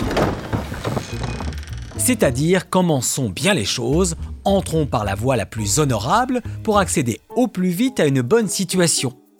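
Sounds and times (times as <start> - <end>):
door swinging or sliding open with a faint creak: 0.0 - 2.3
speech: 2.0 - 9.2.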